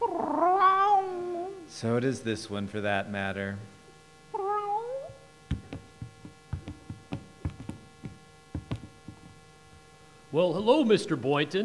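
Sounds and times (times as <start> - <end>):
cat meowing in a cage: 0.0 - 1.6, 4.4 - 5.2
speech: 1.8 - 3.8, 10.4 - 11.6
sharp clicks and knocks rattling inside a cage: 5.5 - 9.4.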